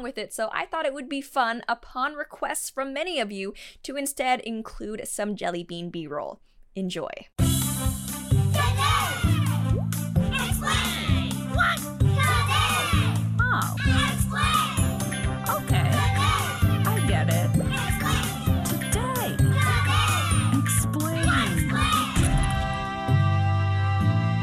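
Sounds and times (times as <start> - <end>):
speech: 0.0 - 8.1
bouncy childlike podcast theme tune with stepping bass line and bright melody: 7.4 - 24.3
group of kids shouting and cheering loudly: 8.5 - 17.0, 17.6 - 22.9.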